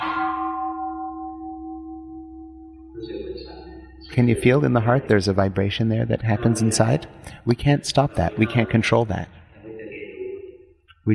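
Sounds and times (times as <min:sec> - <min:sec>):
deep bell or gong struck and ringing: 0:00.0 - 0:05.6
speech: 0:03.0 - 0:09.4.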